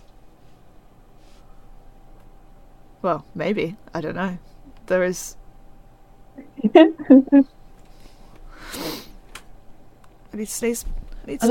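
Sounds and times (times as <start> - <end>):
speech: 3.0 - 5.4, 6.4 - 7.6, 10.4 - 11.4
laughter: 6.5 - 7.4
person sneezing: 8.6 - 9.2.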